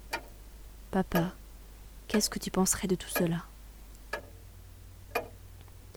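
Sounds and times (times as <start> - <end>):
clock ticking: 0.0 - 0.4, 1.0 - 1.4, 2.1 - 3.4, 4.0 - 4.4, 5.1 - 5.4
speech: 0.9 - 1.4, 2.1 - 3.5.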